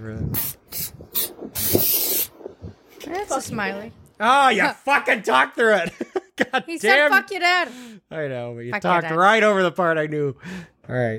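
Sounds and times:
speech: 0.0s - 1.2s, 3.3s - 11.1s
aerosol spray paint can spraying paint on a car: 0.4s - 2.4s.

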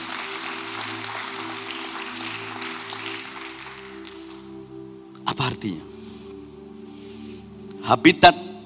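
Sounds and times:
crowd applause: 0.0s - 4.6s
speech: 5.5s - 5.9s, 7.9s - 8.4s.

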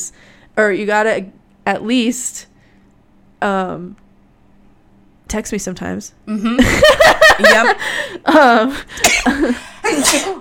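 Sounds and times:
speech: 0.6s - 2.5s, 3.4s - 4.0s, 5.3s - 10.3s
laughter: 6.4s - 8.2s
person sneezing: 9.0s - 10.3s.

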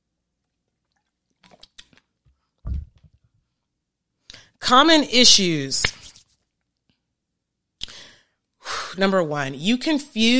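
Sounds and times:
person gulping water: 0.7s - 3.2s
person sipping and slurping water: 0.9s - 2.1s
speech: 4.7s - 6.0s, 9.0s - 10.3s.

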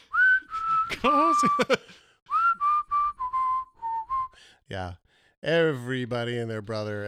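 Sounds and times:
person whistling a catchy pop tune: 0.0s - 4.6s
laughter: 0.5s - 2.1s
speech: 0.9s - 2.0s, 4.7s - 7.0s.

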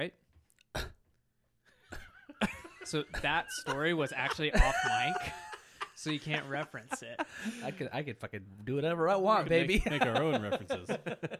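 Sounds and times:
speech: 0.0s - 0.9s, 2.4s - 11.3s
person clearing throat: 0.7s - 1.0s
laughter: 2.0s - 7.9s, 9.5s - 11.3s.

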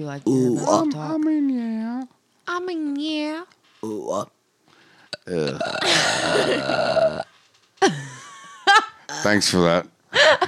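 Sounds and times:
speech: 0.0s - 4.4s, 5.3s - 8.0s, 9.2s - 10.4s
loud rumbling burp: 5.1s - 7.3s.

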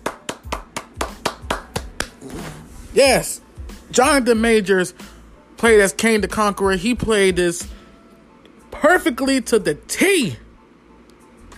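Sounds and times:
hand clapping: 0.0s - 2.2s
speech: 2.2s - 7.8s, 8.8s - 10.4s.

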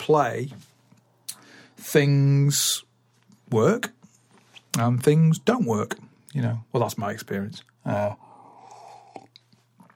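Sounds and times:
speech: 0.1s - 0.7s, 1.8s - 2.9s, 3.5s - 4.0s, 4.8s - 8.2s
person slurping hot coffee: 8.4s - 9.9s.

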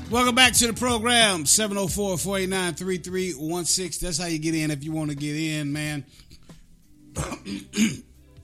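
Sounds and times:
speech: 0.1s - 6.4s, 7.2s - 8.1s
man coughing and clearing throat: 7.1s - 8.2s.

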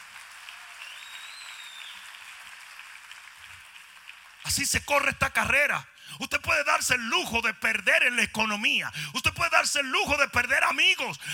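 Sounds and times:
audience applause: 0.0s - 4.5s
speech: 4.4s - 11.3s.

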